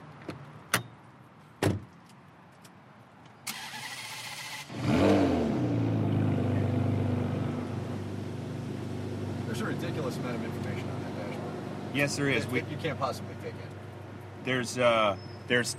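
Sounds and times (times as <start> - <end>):
car door thumping shut: 1.6 - 1.9
car engine idling: 5.8 - 14.9
speech: 9.9 - 10.6, 11.9 - 13.8, 14.4 - 15.7.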